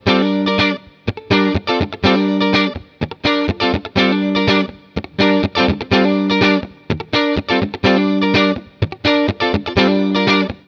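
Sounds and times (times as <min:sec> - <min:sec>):
clean electric guitar on hot middle pickups: 0:00.0 - 0:10.6.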